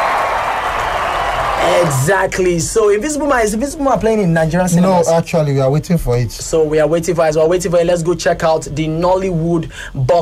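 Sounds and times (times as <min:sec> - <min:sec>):
applause from a group: 0:00.0 - 0:02.2
speech: 0:01.8 - 0:10.2.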